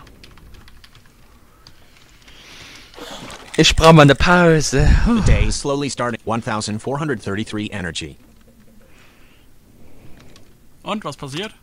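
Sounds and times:
faint keystrokes on a computer keyboard typing a command: 0.0 - 2.4
speech: 3.6 - 8.3, 10.9 - 11.6.

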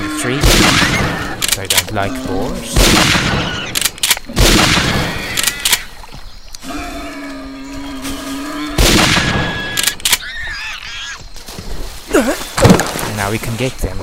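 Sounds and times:
speech: 0.2 - 1.0, 1.6 - 4.8, 13.2 - 14.0
rifle shots fired at boars in a video game: 0.4 - 1.3, 2.8 - 5.5, 8.8 - 10.2.

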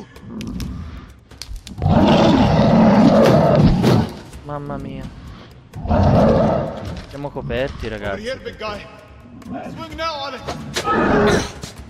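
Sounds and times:
angry bear growling roar in a video game: 0.0 - 1.1, 1.7 - 4.3, 5.7 - 8.1, 9.3 - 9.8, 10.5 - 11.6
speech: 4.5 - 5.2, 7.1 - 11.6.

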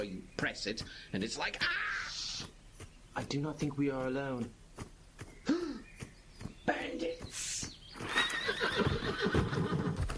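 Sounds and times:
speech: 0.0 - 2.5, 3.2 - 4.6
horse hoofbeats clopping: 0.0 - 10.1
horse neighing in a loud shrill whinny: 8.0 - 10.0.

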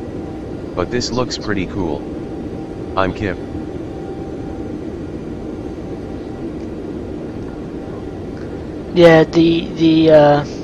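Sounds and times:
simulated airplane engine humming in a flight simulator game: 0.0 - 10.6
speech: 0.8 - 2.2, 3.0 - 3.5, 9.0 - 10.6.

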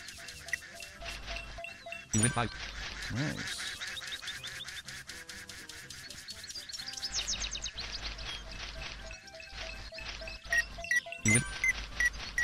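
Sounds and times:
electronic video game tones: 0.1 - 2.6, 8.1 - 12.4
speech: 2.1 - 3.6
cartoonish video game duck quacks: 3.0 - 3.9.

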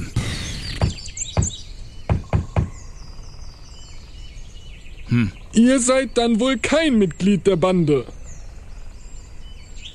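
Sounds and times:
birds chirping: 0.0 - 9.9
patterned knocking on a door: 0.8 - 2.8
speech: 5.1 - 8.2.

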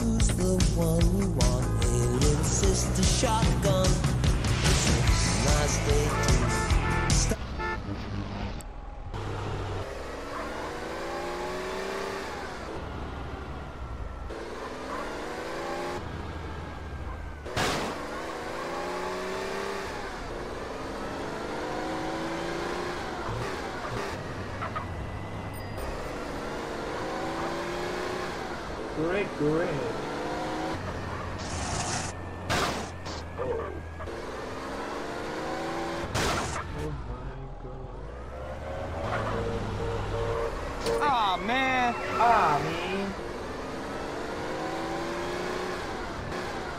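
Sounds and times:
loud car engine revving: 0.0 - 46.7
speech: 0.4 - 1.8, 2.4 - 4.1, 4.8 - 7.4.

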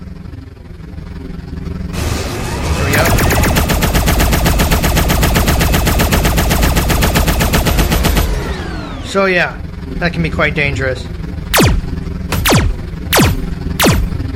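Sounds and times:
rapid automatic gunfire from a powered-up turret in a video game: 2.4 - 9.1, 11.6 - 14.3
speech: 9.2 - 11.2.

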